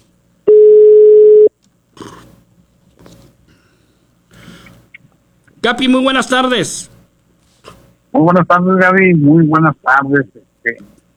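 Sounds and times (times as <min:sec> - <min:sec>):
telephone ringback tone while someone is being called: 0:00.5 - 0:01.5
speech: 0:05.6 - 0:06.9, 0:08.2 - 0:10.9.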